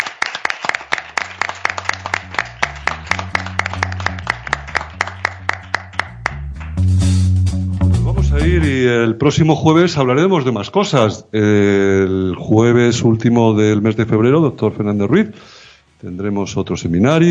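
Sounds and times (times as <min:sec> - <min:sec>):
hand claps: 0:00.0 - 0:07.3
musical backing with low sustained tones: 0:00.8 - 0:08.7
speech: 0:08.6 - 0:17.2.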